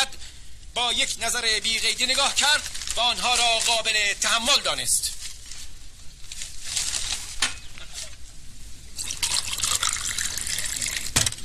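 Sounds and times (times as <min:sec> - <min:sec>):
speech: 0:00.9 - 0:05.2
water poured into a drinking glass: 0:09.0 - 0:11.2.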